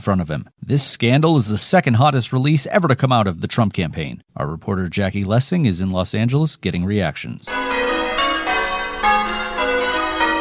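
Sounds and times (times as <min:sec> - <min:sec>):
speech: 0:00.0 - 0:08.3
bells ringing in a peal: 0:07.5 - 0:10.3.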